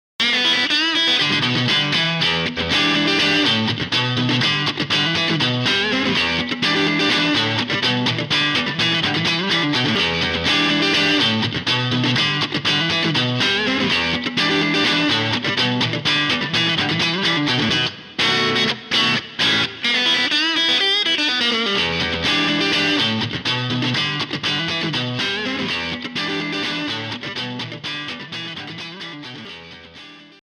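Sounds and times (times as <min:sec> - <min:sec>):
blues guitar tone: 0:00.2 - 0:30.4.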